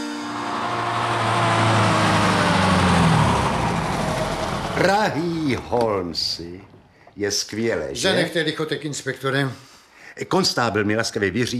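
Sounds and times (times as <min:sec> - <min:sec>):
car engine starting and driving: 0:00.1 - 0:06.9
speech: 0:04.8 - 0:11.5.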